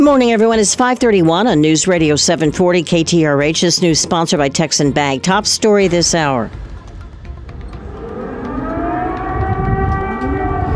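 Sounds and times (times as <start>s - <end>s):
speech: 0.0s - 6.7s
air raid sirens wailing: 6.0s - 10.7s.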